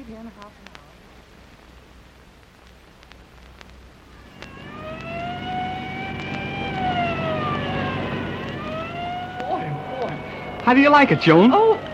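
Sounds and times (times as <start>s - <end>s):
speech: 0.1s - 0.9s, 10.7s - 11.7s
car engine and road noise as the car speeds along: 3.4s - 11.9s
police car siren wailing while driving: 4.2s - 11.9s.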